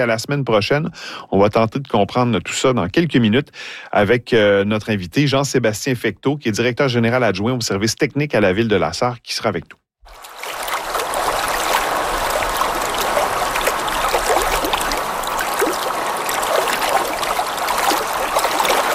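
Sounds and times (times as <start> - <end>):
speech: 0.0 - 10.3
water flowing and trickling at a lake: 10.0 - 18.9.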